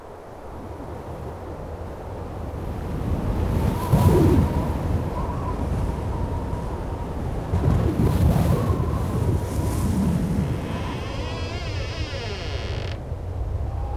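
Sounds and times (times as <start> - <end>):
wind gusts buffeting the microphone: 0.6 - 13.9
wind blowing in a low rushing roar: 5.3 - 13.9.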